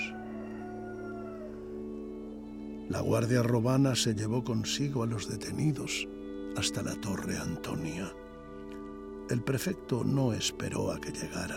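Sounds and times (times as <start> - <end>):
rooster crowing at dawn: 0.0 - 2.0
speech: 2.9 - 8.2, 9.3 - 11.5.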